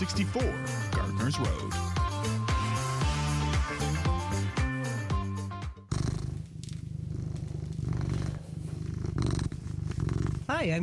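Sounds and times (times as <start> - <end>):
speech: 0.0 - 2.5, 10.6 - 10.8
melodic music: 0.0 - 5.6
cat purring: 5.8 - 10.8.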